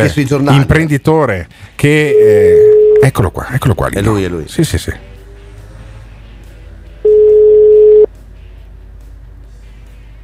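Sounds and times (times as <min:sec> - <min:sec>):
speech: 0:00.0 - 0:05.1
telephone ringback tone while placing a call to a mobile phone: 0:02.1 - 0:03.1, 0:07.0 - 0:08.1.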